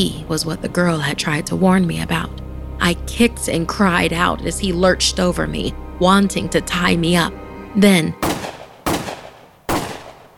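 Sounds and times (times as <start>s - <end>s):
speech: 0.0s - 8.2s
gunshots: 8.2s - 10.3s.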